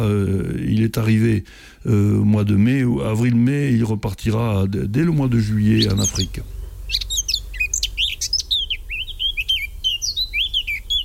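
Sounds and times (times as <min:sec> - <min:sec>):
speech: 0:00.0 - 0:07.1
low rumble: 0:00.0 - 0:11.0
Eurasian blackcap singing: 0:05.0 - 0:11.0.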